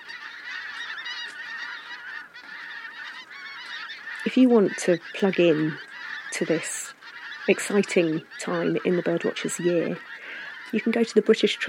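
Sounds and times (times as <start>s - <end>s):
large flock of geese honking: 0.0s - 11.6s
speech: 4.3s - 5.8s, 6.4s - 6.8s, 7.5s - 11.6s.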